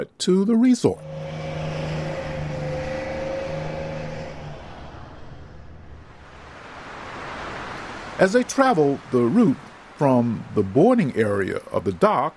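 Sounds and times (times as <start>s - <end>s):
speech: 0.1s - 1.1s, 8.2s - 12.3s
steady low engine-like hum: 0.9s - 8.2s
ocean waves washing against a shore: 6.1s - 12.3s.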